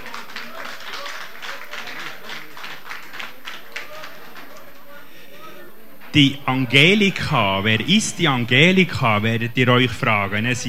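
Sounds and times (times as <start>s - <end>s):
audience applauding: 0.0s - 5.1s
speech: 6.2s - 10.6s.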